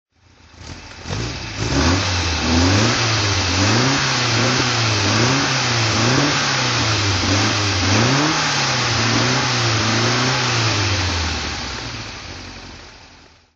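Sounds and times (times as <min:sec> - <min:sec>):
Alfa Romeo Giulietta SS engine throttle: 0:00.5 - 0:13.3.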